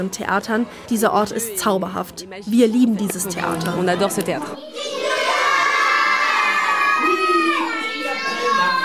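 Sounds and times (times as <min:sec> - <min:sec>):
speech: 0:00.0 - 0:04.9
crowd of children shouting and cheering to a puppet: 0:04.5 - 0:08.8.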